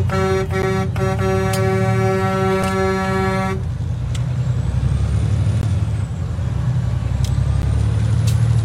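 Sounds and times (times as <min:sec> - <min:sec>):
loud sustained horn: 0:00.0 - 0:03.7
heavy trucks rumbling past on a highway: 0:00.0 - 0:08.6.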